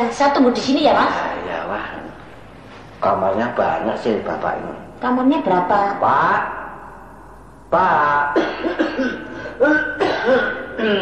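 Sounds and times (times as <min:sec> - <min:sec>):
speech: 0:00.0 - 0:02.0, 0:03.0 - 0:06.6, 0:07.7 - 0:10.9
man coughing inside a house: 0:08.3 - 0:10.9.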